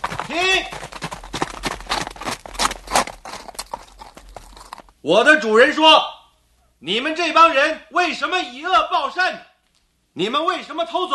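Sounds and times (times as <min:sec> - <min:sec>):
horse hoofbeats: 0:00.0 - 0:05.0
speech: 0:05.0 - 0:06.1, 0:06.8 - 0:09.5, 0:10.2 - 0:11.1.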